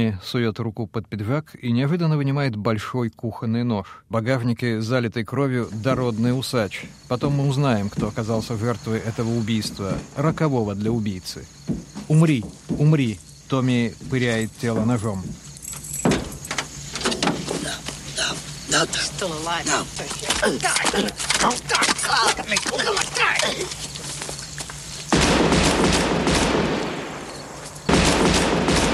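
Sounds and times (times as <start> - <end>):
speech: 0.0 - 15.5, 18.8 - 23.9
scuffling: 11.6 - 25.2
agitated shouting: 19.7 - 23.7
gunshots fired into a body: 25.1 - 28.9.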